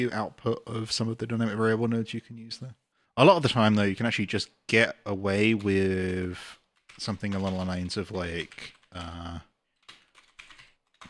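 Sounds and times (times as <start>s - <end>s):
speech: 0.0s - 9.5s
typing on a computer keyboard: 6.7s - 11.0s.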